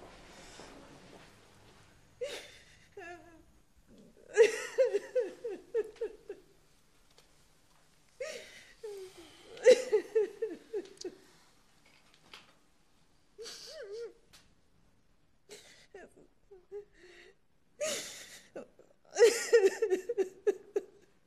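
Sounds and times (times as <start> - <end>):
woman sobbing and crying: 2.2 - 6.5, 8.2 - 11.3, 13.4 - 14.2, 15.5 - 21.1
sharp gasping breaths: 8.2 - 9.9.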